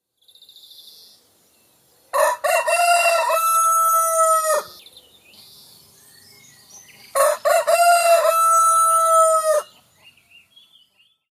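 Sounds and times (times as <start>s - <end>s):
rooster crowing: 2.1s - 4.8s, 7.2s - 9.7s.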